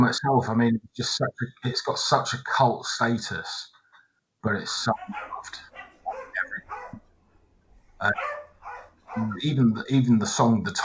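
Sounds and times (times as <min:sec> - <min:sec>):
speech: 0:00.0 - 0:03.7, 0:04.4 - 0:05.7, 0:08.0 - 0:08.4, 0:09.2 - 0:10.8
dogs barking: 0:04.8 - 0:07.1, 0:07.8 - 0:09.6.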